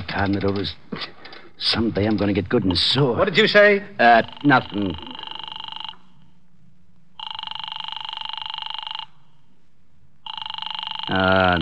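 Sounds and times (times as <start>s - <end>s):
low hum: 0.0s - 11.6s
speech: 0.1s - 5.1s, 11.1s - 11.6s
office telephone bell ringing unanswered: 4.2s - 6.3s, 7.2s - 9.3s, 10.2s - 11.6s.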